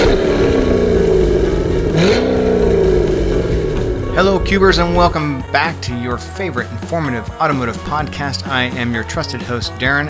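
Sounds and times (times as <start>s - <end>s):
dirt track race car engine revving: 0.0s - 5.7s
speech: 4.2s - 10.0s.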